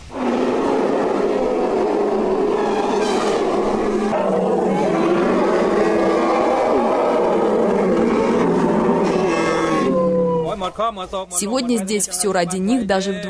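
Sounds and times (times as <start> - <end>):
elephants trumpeting at a National Elephant Day celebration in Ayutthaya Thailand: 0.0 - 10.5
speech: 10.9 - 13.2.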